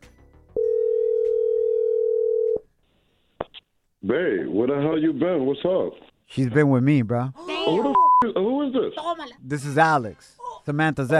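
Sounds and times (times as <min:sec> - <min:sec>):
phone call ringing tone electronic beep: 0:00.6 - 0:02.6
speech: 0:04.1 - 0:11.1.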